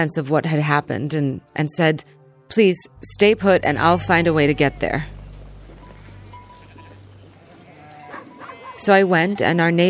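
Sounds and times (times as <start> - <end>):
speech: 0.0 - 5.2, 8.8 - 9.8
steady low rumble: 3.0 - 7.8
sheep and goats bleating while grazing: 3.8 - 9.8.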